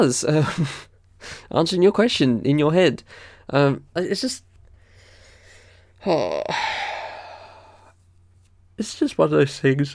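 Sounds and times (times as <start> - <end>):
speech: 0.0 - 4.5, 6.0 - 6.8, 8.8 - 9.9
person yawning with a voiced sliding groan: 6.0 - 7.9.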